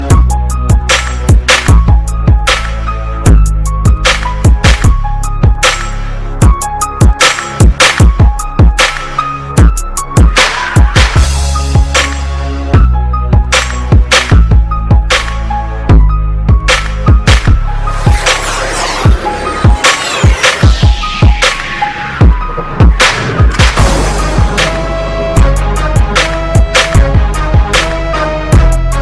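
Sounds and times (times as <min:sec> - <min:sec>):
heavy hip-hop bass ringtone: 0:00.0 - 0:29.0.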